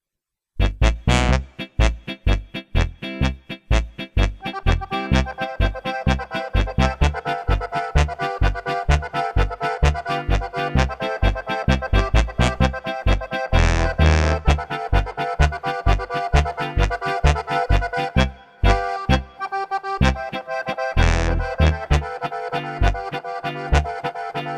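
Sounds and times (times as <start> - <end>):
double bass: 0.6 - 19.4, 20.0 - 24.5.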